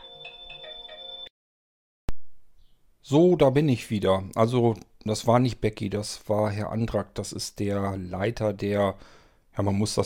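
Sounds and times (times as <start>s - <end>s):
phone ringtone with bright repeating electronic melody: 0.0s - 1.3s
faint hiss: 2.2s - 10.0s
speech: 3.1s - 10.0s.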